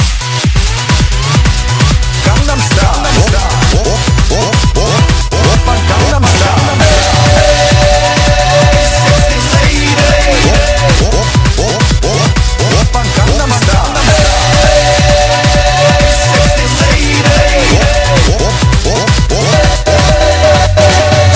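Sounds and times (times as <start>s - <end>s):
artificial echo: 0.1s - 21.3s.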